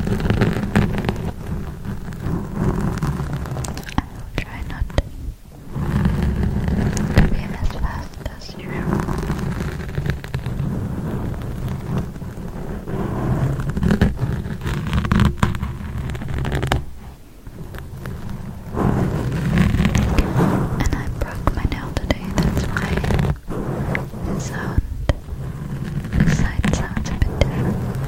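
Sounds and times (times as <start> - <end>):
long nails, sponge and forks scratching on a microphone: 0.0 - 28.0.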